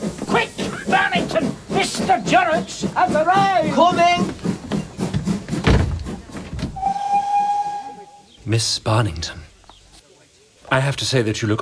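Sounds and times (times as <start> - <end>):
steam train chuffing with hissing bursts: 0.0 - 8.4
speech: 2.6 - 4.3, 8.5 - 9.4, 10.7 - 11.6
sustained steady steam train whistle: 6.8 - 8.3.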